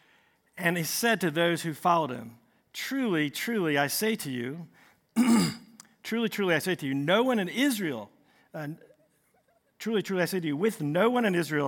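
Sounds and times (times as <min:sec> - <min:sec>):
speech: 0:00.6 - 0:08.9, 0:09.8 - 0:11.6
man clearing his throat during a sermon: 0:05.2 - 0:05.8.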